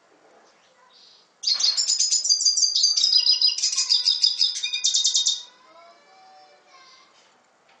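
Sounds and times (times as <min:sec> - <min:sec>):
red siskin singing fast high twittering and buzzy notes: 0:01.0 - 0:07.0.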